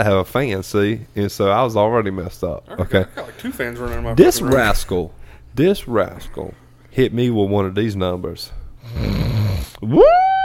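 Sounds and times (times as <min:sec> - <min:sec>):
speech: 0:00.0 - 0:10.4
person imitating a man's loud snoring: 0:08.8 - 0:09.8.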